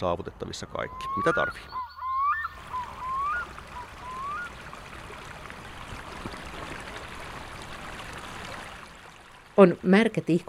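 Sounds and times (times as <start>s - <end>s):
speech: 0.0s - 1.9s, 9.6s - 10.4s
small brook babbling and trickling: 0.0s - 10.4s
faint chirping or whistling notes: 0.4s - 4.6s.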